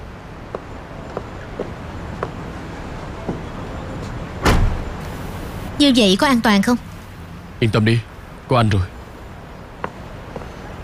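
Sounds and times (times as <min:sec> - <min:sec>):
car door slamming shut as people get into a car: 0:04.4 - 0:05.0
speech: 0:05.8 - 0:06.9, 0:07.6 - 0:08.9.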